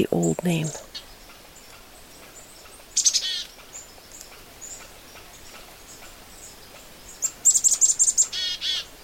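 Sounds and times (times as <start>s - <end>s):
speech: 0.0s - 1.0s
black-capped chickadee calling: 0.0s - 9.0s
faint birdsong: 0.0s - 9.0s.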